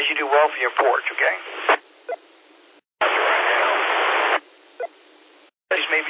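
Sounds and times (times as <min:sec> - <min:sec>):
harsh radio static hiss: 0:00.0 - 0:01.9, 0:03.0 - 0:04.5, 0:05.7 - 0:06.0
speech: 0:00.2 - 0:01.8.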